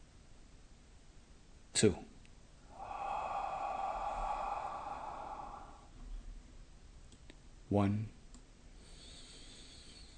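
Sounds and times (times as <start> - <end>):
speech: 1.8 - 2.1, 7.7 - 8.2
deep breath in on a slow count: 2.6 - 6.4, 8.8 - 10.1.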